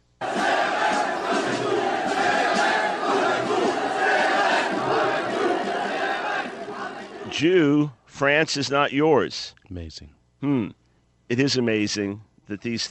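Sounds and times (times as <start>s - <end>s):
demonstrators chanting in a street protest in Paris: 0.2s - 7.4s
speech: 7.4s - 12.8s.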